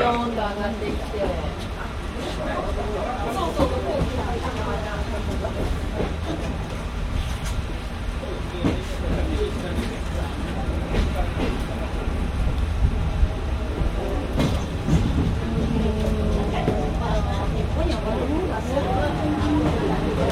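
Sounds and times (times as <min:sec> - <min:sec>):
train with trolley cars reversing on a switchback line: 0:00.0 - 0:20.2.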